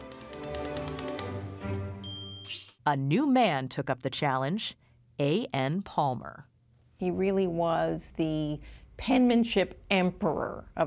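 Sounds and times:
mechanical typewriter keystrokes: 0:00.0 - 0:01.4
speech: 0:02.9 - 0:10.8.

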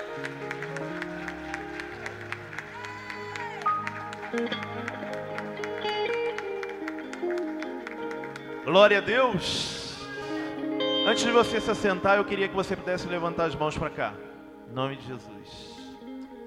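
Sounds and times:
audience clapping in a steady quick rhythm: 0:00.0 - 0:09.7
sustained keyboard and music chords: 0:00.0 - 0:16.4
speech: 0:04.3 - 0:05.0, 0:08.7 - 0:09.8, 0:11.1 - 0:15.7.

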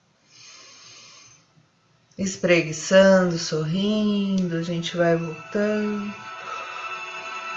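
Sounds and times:
deep breath in and out: 0:00.2 - 0:01.6
speech: 0:02.2 - 0:06.3.

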